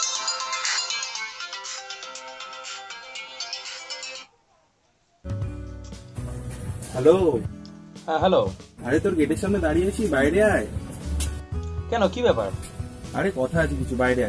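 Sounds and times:
telephone ringtone on an outgoing call: 0:00.0 - 0:04.3
speech: 0:07.0 - 0:10.8, 0:11.9 - 0:14.2.

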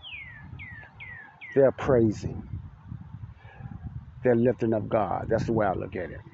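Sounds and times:
bird singing descending whistled notes outside: 0:00.0 - 0:01.8, 0:06.2 - 0:06.3
low steady rumble: 0:00.0 - 0:06.3
speech: 0:01.5 - 0:02.5, 0:04.2 - 0:06.3.

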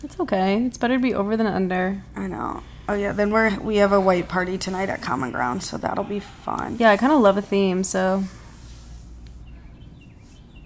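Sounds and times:
speech: 0:00.0 - 0:08.4
steady outdoor rumble: 0:00.0 - 0:08.9
faint birds chirping outdoors: 0:02.3 - 0:10.6.

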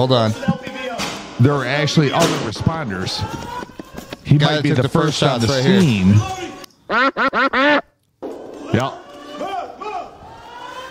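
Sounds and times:
speech: 0:00.0 - 0:00.5, 0:01.4 - 0:07.6
nasal buzzy duck quacks dubbed over gunshots: 0:06.9 - 0:07.9.

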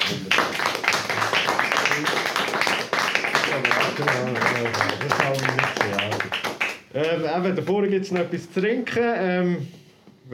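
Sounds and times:
audience applause: 0:00.0 - 0:06.8
speech: 0:00.1 - 0:00.4, 0:04.0 - 0:06.1, 0:07.0 - 0:10.3.

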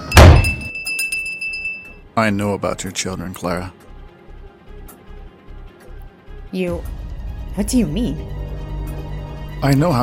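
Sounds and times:
door shutting with heavy thump: 0:00.2 - 0:00.7
speech: 0:02.2 - 0:03.8, 0:06.5 - 0:08.4, 0:09.6 - 0:10.0.

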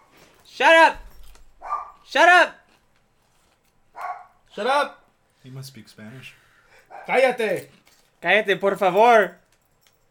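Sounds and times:
speech: 0:00.6 - 0:01.0, 0:02.1 - 0:02.6, 0:04.6 - 0:09.4
dog barking: 0:01.6 - 0:02.1, 0:03.9 - 0:04.4, 0:06.8 - 0:07.2.

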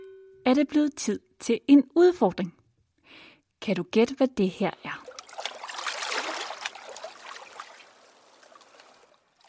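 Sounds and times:
speech: 0:00.5 - 0:02.6, 0:03.6 - 0:05.1
water sloshing and trickling, possibly tidal: 0:04.9 - 0:09.4.

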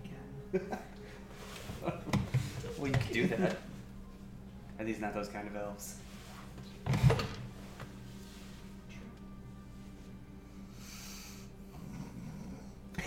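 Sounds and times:
quiet steady low hum: 0:00.0 - 0:13.0
speech: 0:00.5 - 0:00.9, 0:02.8 - 0:03.7, 0:04.8 - 0:06.1
person imitating a rasping snore: 0:11.7 - 0:12.8.

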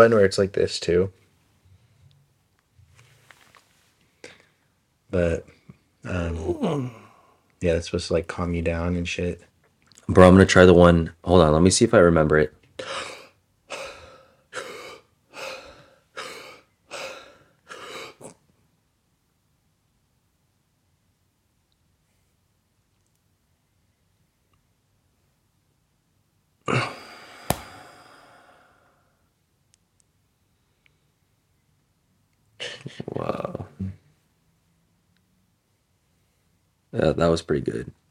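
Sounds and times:
speech: 0:00.0 - 0:01.2, 0:05.1 - 0:07.0, 0:07.6 - 0:09.5, 0:10.1 - 0:13.1, 0:37.0 - 0:38.0
sharp noisy inhales in a breathwork exercise: 0:27.0 - 0:29.0
loud forceful rushing exhale in a breathwork exercise: 0:27.2 - 0:28.8.

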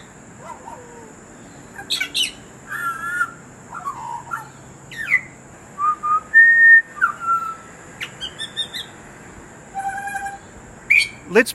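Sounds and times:
butcher bird singing flute-like melodies: 0:01.6 - 0:08.9, 0:09.7 - 0:11.3
speech: 0:11.4 - 0:11.5.

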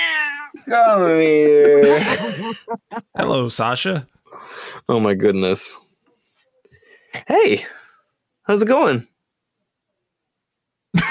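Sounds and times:
cat meowing: 0:00.0 - 0:00.7
speech: 0:00.6 - 0:04.2, 0:04.9 - 0:05.8, 0:07.1 - 0:07.8, 0:08.5 - 0:09.1
laughter: 0:01.3 - 0:03.2.

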